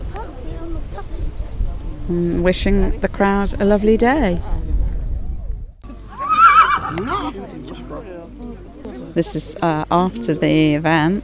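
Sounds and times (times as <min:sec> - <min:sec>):
people's voices: 0:00.0 - 0:11.2
speech: 0:02.1 - 0:04.6, 0:09.2 - 0:11.2
horse neighing at an outdoor event: 0:06.1 - 0:07.4.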